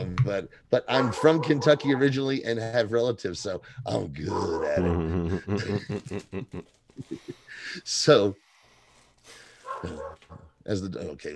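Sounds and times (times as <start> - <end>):
speech: 0.3 - 8.4, 9.8 - 11.3
several dogs barking in short sharp bursts: 0.9 - 2.2, 9.6 - 10.4
laughter: 4.4 - 7.8.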